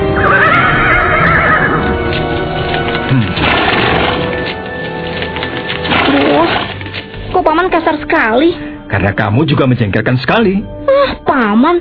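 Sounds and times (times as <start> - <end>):
horse neighing: 0.1 - 2.1
horse hooves clip-clopping: 0.3 - 7.2
speech: 8.5 - 11.7.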